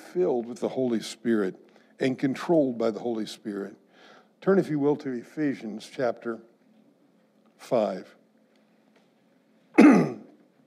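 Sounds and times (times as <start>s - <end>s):
speech: 0.1s - 3.8s, 4.4s - 6.5s, 7.6s - 8.2s
throat clearing by a preacher during a sermon: 9.8s - 10.4s.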